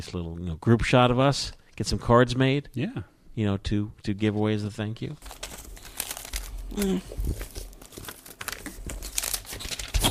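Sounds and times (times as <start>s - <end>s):
speech: 0.0s - 5.4s, 6.7s - 7.6s
paper rustling and crinkling: 5.2s - 10.0s.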